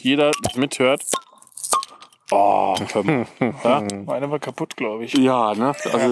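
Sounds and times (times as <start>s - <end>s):
speech: 0.0s - 1.3s, 2.3s - 6.0s
bottle of naturally cloudy Helles beer being opened: 0.3s - 2.9s
glassy clink of a beer bottle: 0.3s - 2.9s
laughter: 2.4s - 4.1s, 5.2s - 6.0s.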